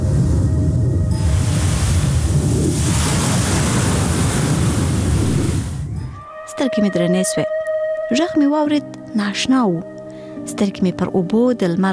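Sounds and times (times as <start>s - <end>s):
north wind gusts: 0.0s - 6.2s
ocean waves breaking on a sandy shore: 1.2s - 5.8s
speech: 6.6s - 11.9s.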